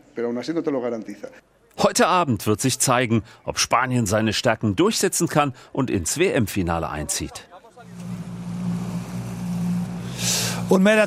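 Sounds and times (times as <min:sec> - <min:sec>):
speech: 0:00.2 - 0:08.0, 0:10.7 - 0:11.0
boat engine droning on the water: 0:07.8 - 0:10.8.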